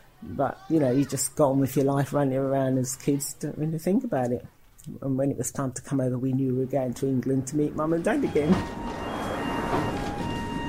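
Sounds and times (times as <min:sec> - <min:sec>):
speech: 0:00.2 - 0:09.0
underground train arriving at station rumbling: 0:06.4 - 0:10.6.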